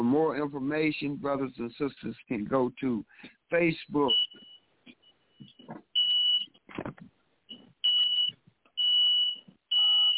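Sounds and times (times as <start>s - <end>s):
speech: 0.1s - 4.5s
smoke alarm beeping loudly: 4.0s - 6.6s, 7.8s - 10.1s.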